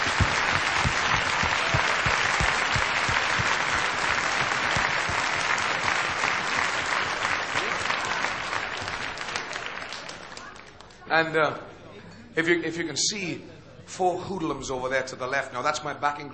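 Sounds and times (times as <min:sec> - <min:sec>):
large audience applauding an orchestra: 0:00.0 - 0:11.0
faint crowd murmur: 0:00.0 - 0:12.4
speech: 0:11.2 - 0:11.7, 0:12.4 - 0:16.3.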